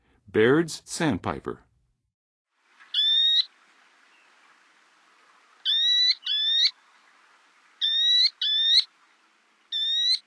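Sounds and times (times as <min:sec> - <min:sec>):
Baird's Sandpiper in Western USA, North America: 0:02.8 - 0:04.3, 0:05.6 - 0:06.8, 0:07.8 - 0:08.9, 0:09.6 - 0:10.2.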